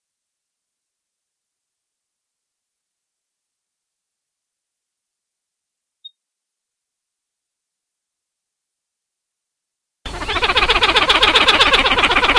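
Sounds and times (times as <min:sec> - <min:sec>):
pied-billed grebe calling: 0:10.1 - 0:12.3.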